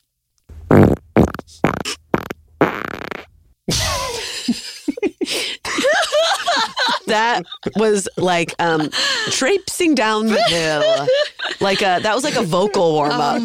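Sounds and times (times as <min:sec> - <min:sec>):
sputtering farts: 0:00.5 - 0:03.4
laughter: 0:03.7 - 0:13.4
speech: 0:07.1 - 0:13.4.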